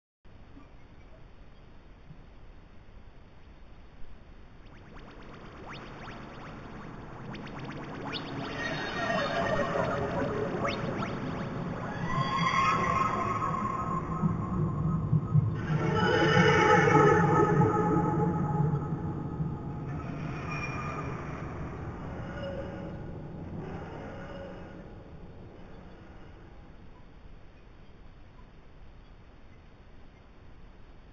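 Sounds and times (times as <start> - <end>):
electronic signal: 4.7 - 23.1.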